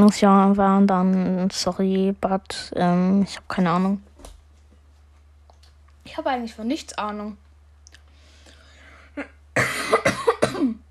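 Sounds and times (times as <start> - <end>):
speech: 0.0 - 4.1, 6.1 - 7.4, 9.2 - 10.8
raspy drawn-out breath: 8.1 - 9.2
person coughing after choking on a peanut: 9.1 - 10.8.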